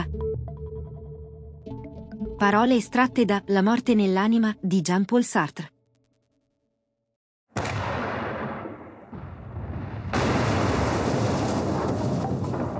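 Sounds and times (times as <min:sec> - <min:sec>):
speech: 0:02.4 - 0:05.7
heavy cannon blasts: 0:07.6 - 0:12.7.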